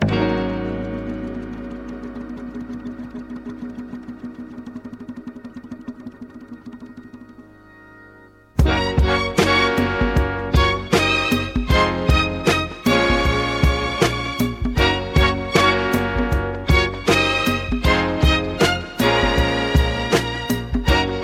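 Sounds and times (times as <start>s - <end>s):
music in B flat minor at 157 bpm: 0.0s - 21.2s.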